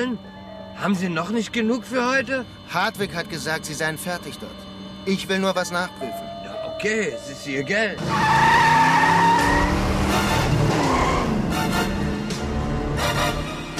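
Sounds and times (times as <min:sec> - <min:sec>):
speech: 0:00.0 - 0:08.7
car tires squealing in a sharp U-turn: 0:08.0 - 0:11.6
car engine: 0:08.0 - 0:13.6.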